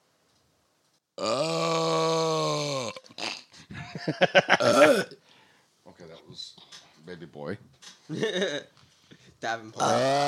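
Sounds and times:
person burping: 1.2 - 3.6, 4.5 - 5.2, 8.2 - 8.7, 9.8 - 10.2
laughter-like vocal sounds: 3.6 - 5.0, 8.1 - 8.7
speech: 4.0 - 5.2, 6.3 - 8.8, 9.4 - 10.2.

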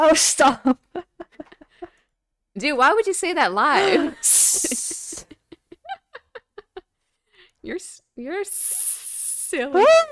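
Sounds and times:
speech: 0.0 - 0.8, 2.6 - 4.8, 8.2 - 8.8, 9.6 - 10.1
voice imitating a snake hiss: 8.5 - 9.5.

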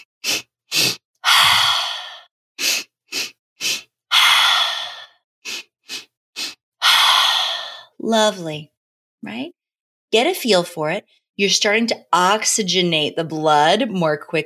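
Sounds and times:
sharp sniffed inhales of paced breathing: 0.0 - 7.9
loud breathy exhale of paced breathing: 0.3 - 7.9
speech: 8.0 - 14.4.

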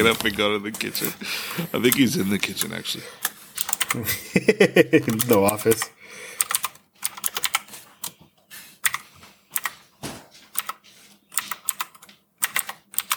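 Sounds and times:
speech: 0.0 - 3.3, 3.9 - 6.2
laughter: 1.0 - 2.4, 3.9 - 5.5
loud computer keyboard clacking: 1.8 - 4.0, 5.0 - 8.2, 8.8 - 9.8, 10.5 - 13.1.

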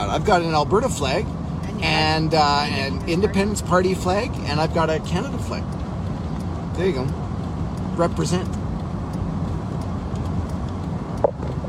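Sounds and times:
convoy of cars driving past: 0.0 - 11.6
speech: 0.1 - 5.8, 6.8 - 7.2, 8.0 - 8.6.

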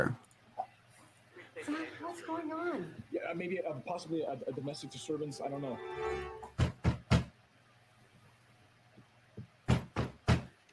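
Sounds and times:
speech: 0.0 - 0.2, 1.6 - 6.5
heavy pounding knocks on a door: 6.6 - 7.3, 9.7 - 10.5.

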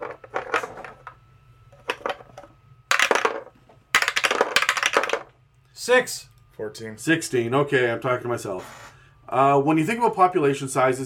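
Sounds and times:
dice rolling on a hard tabletop: 1.8 - 5.3
speech: 5.8 - 11.0.

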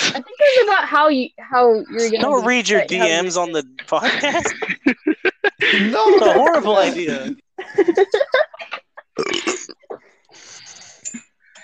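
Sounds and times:
speech: 0.1 - 9.8
laughter: 2.0 - 9.2
person burping: 9.2 - 10.0
rasping belch: 9.2 - 10.0.

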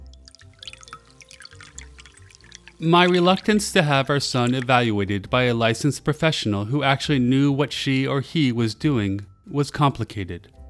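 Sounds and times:
coffee machine dripping slowly with low mechanical hum: 0.0 - 4.8
speech: 2.8 - 10.6.

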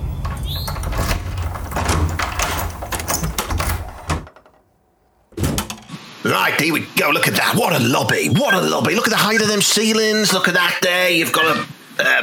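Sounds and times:
heavy front door being opened with rattling and scraping: 0.0 - 6.2
speech: 6.3 - 12.2.

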